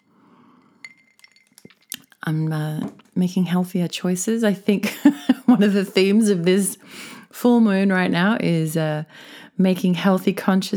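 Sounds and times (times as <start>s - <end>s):
glasses of tomato juice clinking in a toast: 0.8s - 2.1s
speech: 2.2s - 10.7s.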